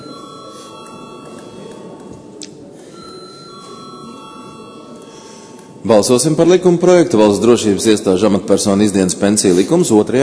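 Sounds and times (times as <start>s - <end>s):
electric bell ringing in a parliament chamber to call a vote: 0.0s - 6.3s
murmur of room noise: 0.0s - 10.2s
speech: 5.8s - 10.2s.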